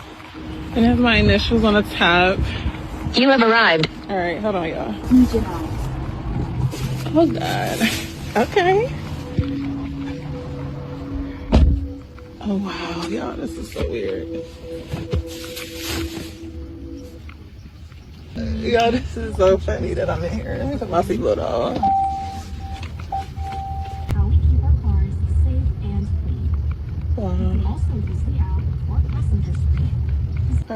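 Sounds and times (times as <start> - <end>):
low rumble of road noise inside a moving driverless car on back roads: 0.0 - 30.7
speech: 0.7 - 5.8, 7.1 - 9.7, 12.4 - 15.4, 18.4 - 22.0, 27.8 - 28.6
brief steady tone: 9.0 - 17.4, 21.8 - 24.2.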